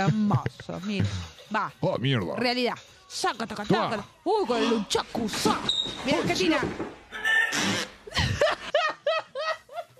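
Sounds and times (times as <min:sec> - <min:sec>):
speech: 0:00.0 - 0:08.7
loud raspy and squeaky farting noises: 0:07.1 - 0:08.1
bursts of laughter: 0:08.1 - 0:09.9.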